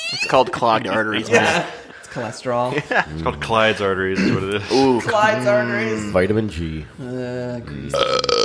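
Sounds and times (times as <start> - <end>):
laughter: 0.0 - 3.4
speech: 0.1 - 8.4
long loud burp with low droning tone: 7.9 - 8.4.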